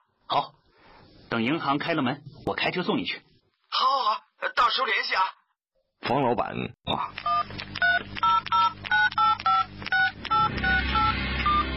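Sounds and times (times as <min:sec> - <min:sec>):
speech: 0:00.3 - 0:00.6, 0:01.3 - 0:03.9, 0:04.7 - 0:05.4, 0:06.1 - 0:07.6
mobile phone keypad dialing beeps: 0:07.2 - 0:11.7.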